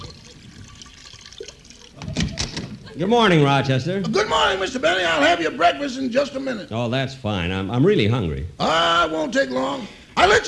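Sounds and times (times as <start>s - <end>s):
cognac poured into a dish: 0.0s - 2.3s
speech: 3.0s - 10.4s.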